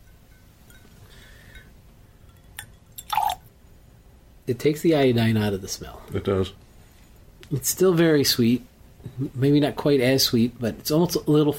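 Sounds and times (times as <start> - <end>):
scotch glass clinking: 0.0 - 3.5
drop of water added to scotch glass: 2.3 - 3.5
speech: 4.5 - 6.6, 7.5 - 11.5.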